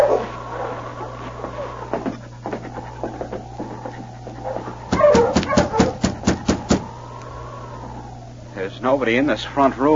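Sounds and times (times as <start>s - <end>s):
sled dog team barking: 0.0s - 7.0s
sled dog team whining and whimpering: 0.0s - 8.6s
steady low hum: 0.0s - 9.9s
speech: 8.8s - 9.9s.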